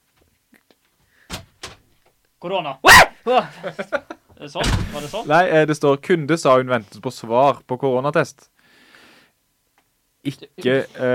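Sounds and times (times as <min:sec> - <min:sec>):
speech: 0:02.4 - 0:08.6, 0:10.2 - 0:11.1
loud broadband knocks or clunks: 0:04.6 - 0:05.1
door being opened: 0:04.6 - 0:05.3.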